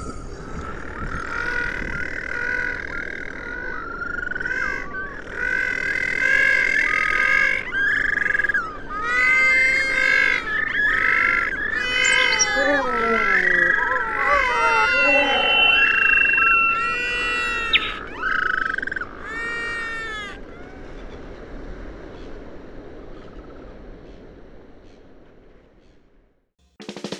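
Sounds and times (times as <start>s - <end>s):
New Zealand little penguins calling: 0.8s - 20.4s.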